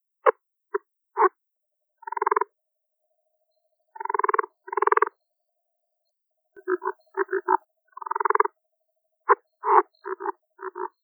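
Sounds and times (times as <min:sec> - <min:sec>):
leopard frog calling: 0:02.0 - 0:02.5, 0:03.9 - 0:05.2, 0:06.6 - 0:08.6, 0:09.3 - 0:11.0.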